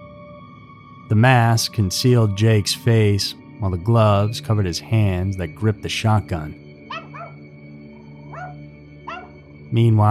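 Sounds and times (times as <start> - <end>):
speech: 1.1 - 6.6, 9.7 - 10.1
dog barking: 6.9 - 7.4, 8.2 - 9.4.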